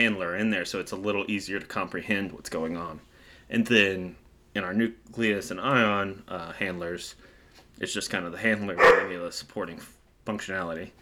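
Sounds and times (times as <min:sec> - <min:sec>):
speech: 0:00.0 - 0:11.0
dog barking: 0:08.8 - 0:09.2.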